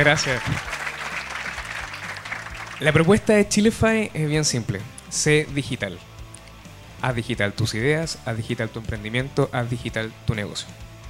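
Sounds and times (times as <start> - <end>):
speech: 0.0 - 0.8, 2.8 - 6.1, 7.0 - 10.9
audience applauding: 0.0 - 3.2.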